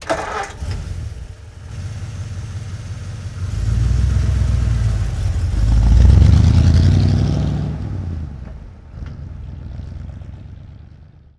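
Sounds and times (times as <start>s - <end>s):
1947 Ford V8 truck engine starting and idling: 0.0s - 11.3s.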